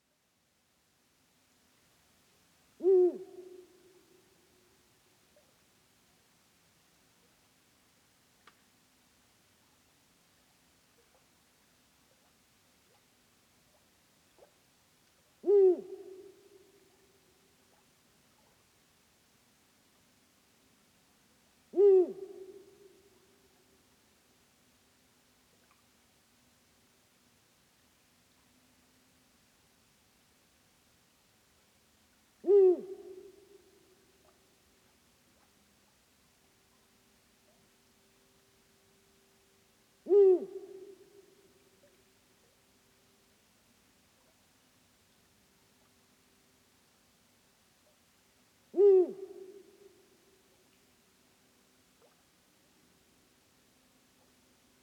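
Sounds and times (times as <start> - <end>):
Bubo bubo eagle owl: 2.8 - 4.3, 15.4 - 17.1, 21.7 - 23.2, 32.4 - 35.5, 40.0 - 42.6, 48.7 - 50.6.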